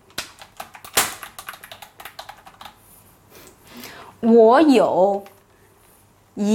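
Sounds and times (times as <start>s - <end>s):
rapid typing on a keyboard: 0.2s - 2.8s
speech: 4.2s - 5.3s, 6.4s - 6.5s.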